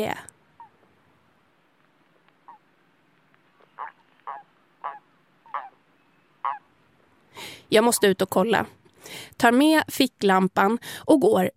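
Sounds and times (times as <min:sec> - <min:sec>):
speech: 0:00.0 - 0:00.3, 0:07.7 - 0:11.5
toads calling at a pond at night: 0:00.0 - 0:00.8, 0:02.4 - 0:02.7, 0:03.6 - 0:05.8, 0:06.4 - 0:06.7
faint steady hum: 0:00.0 - 0:11.5.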